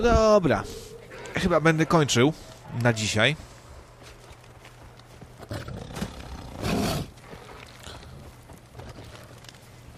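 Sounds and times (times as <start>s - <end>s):
speech: 0.0s - 3.5s
tamed tiger roaring furiously: 5.5s - 7.1s.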